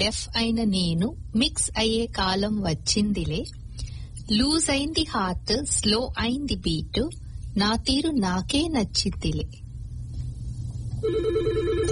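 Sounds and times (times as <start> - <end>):
speech: 0.0 - 3.6, 4.3 - 9.6, 11.0 - 11.8
low hum: 0.0 - 11.9
telephone ringing with an incoming call: 11.0 - 11.9.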